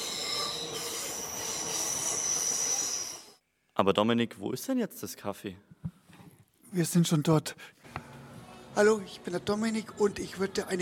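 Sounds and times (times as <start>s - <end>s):
S-Bahn commuter train wheels letting out a high-pitched squeal: 0.0s - 3.4s
speech: 3.8s - 5.9s, 6.7s - 7.8s, 8.8s - 10.8s.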